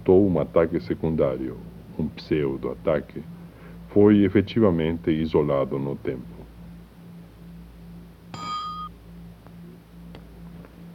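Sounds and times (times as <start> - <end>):
speech: 0.0 - 6.4
faint low hum: 0.0 - 10.9
bell rung by its clapper striking it: 8.3 - 8.9.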